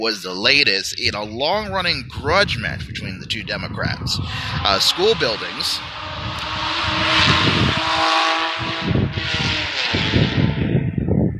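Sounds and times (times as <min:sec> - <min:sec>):
speech: 0:00.0 - 0:09.6
motorcycles roaring past outside: 0:04.2 - 0:10.8.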